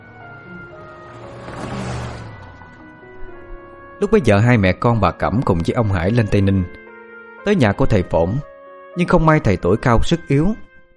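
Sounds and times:
car engine starting and driving away toward the city: 0.0s - 3.9s
speech: 4.0s - 6.8s, 7.4s - 10.6s.

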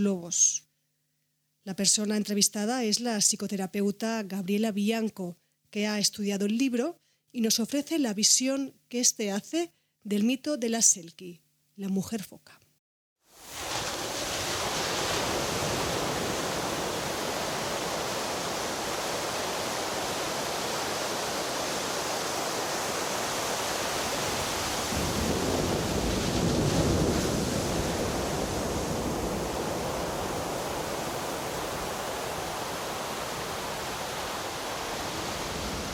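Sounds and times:
speech: 0.0s - 0.6s, 1.6s - 12.6s
stormy sea waves: 13.3s - 35.9s
wind roaring over a stormy sea: 13.6s - 35.9s.

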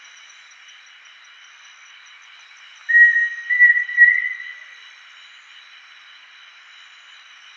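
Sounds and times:
pheasant cuckoo Dromococcyx phasianellus whistling song: 2.9s - 4.7s.

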